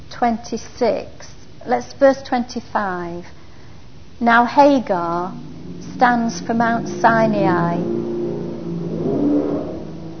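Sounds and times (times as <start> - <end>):
speech: 0.2 - 3.4, 4.2 - 8.0
motorbikes revving past: 5.2 - 10.1.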